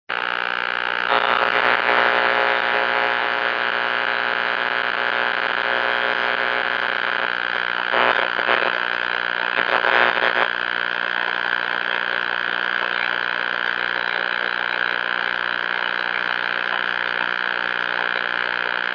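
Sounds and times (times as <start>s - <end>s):
6m band radio noise: 0.1s - 18.9s.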